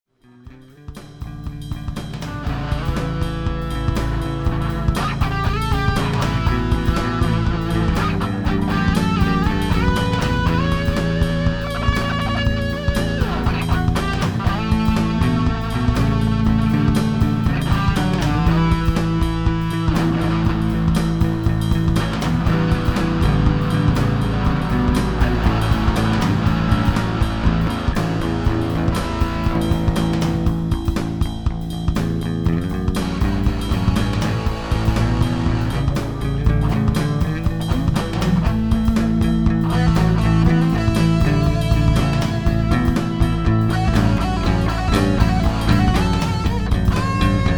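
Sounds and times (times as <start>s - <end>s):
guitar: 0.0s - 47.5s.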